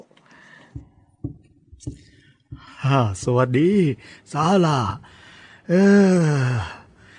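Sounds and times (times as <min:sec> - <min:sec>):
heavy footsteps in a steady walking rhythm: 0:00.6 - 0:02.8
speech: 0:02.8 - 0:06.8.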